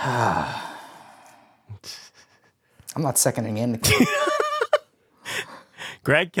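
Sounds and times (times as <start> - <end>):
speech: 0.0 - 0.6, 1.8 - 2.0, 3.0 - 4.3, 6.0 - 6.3
drawn-out voiced yawn: 0.0 - 1.4
short breathy exhales: 0.0 - 2.0.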